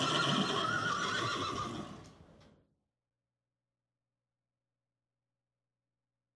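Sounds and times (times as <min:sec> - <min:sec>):
horses neighing: 0:00.0 - 0:02.3.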